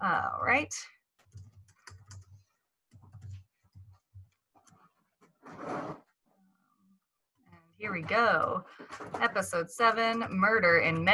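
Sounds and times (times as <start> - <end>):
speech: 0.0 - 1.4, 7.8 - 11.1
computer keyboard typing: 1.2 - 4.7, 8.9 - 11.1.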